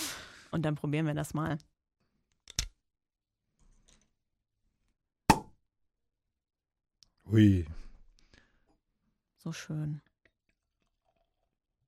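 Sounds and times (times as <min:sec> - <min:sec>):
speech: 0:00.5 - 0:01.7, 0:07.3 - 0:07.8, 0:09.4 - 0:10.1
cork popping from a sparkling wine bottle: 0:05.3 - 0:05.6.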